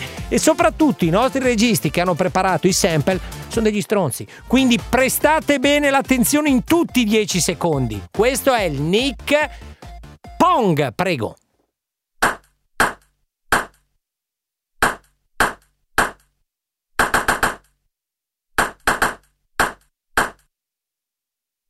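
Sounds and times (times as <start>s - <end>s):
speech: 0.3s - 9.7s, 10.4s - 11.4s
small ball bouncing: 12.2s - 13.9s, 14.8s - 16.3s, 18.6s - 20.5s.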